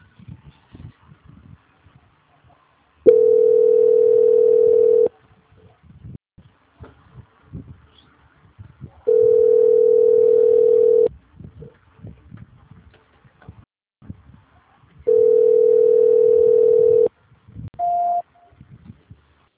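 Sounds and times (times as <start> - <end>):
telephone tones during a call transfer: 3.1 - 5.1, 9.1 - 11.1, 15.1 - 17.1, 17.8 - 18.3
short high beep: 17.8 - 18.5.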